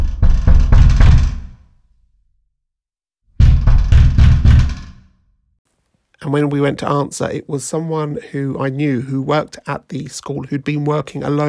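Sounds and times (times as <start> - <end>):
loud rapid banging on a door: 0.0 - 1.6, 3.4 - 5.1
speech: 6.3 - 11.4.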